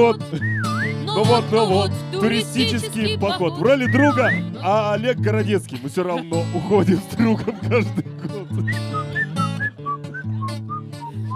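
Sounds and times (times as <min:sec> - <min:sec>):
speech: 0:00.0 - 0:08.1
laughter: 0:00.0 - 0:09.2
person whistling a melody artistically: 0:00.3 - 0:01.9, 0:03.6 - 0:04.6, 0:08.6 - 0:11.3.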